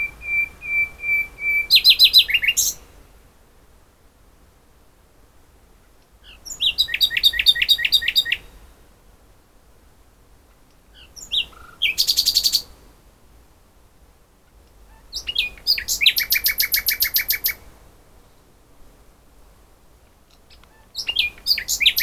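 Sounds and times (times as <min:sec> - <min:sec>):
common nightingale Luscinia megarhynchos singing: 0:00.0 - 0:03.0, 0:06.0 - 0:08.6, 0:10.7 - 0:12.8, 0:14.7 - 0:17.7, 0:20.3 - 0:22.0.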